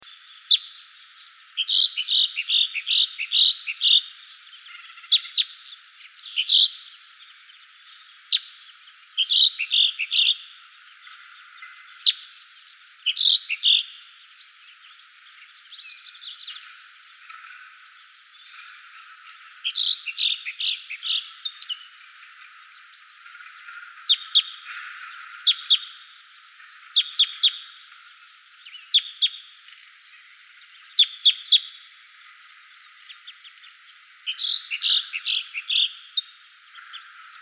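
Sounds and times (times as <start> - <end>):
Red Crossbill Loxia curvirostra type two calling: 0.1 - 7.2, 8.1 - 14.1, 15.8 - 28.1, 33.1 - 37.4.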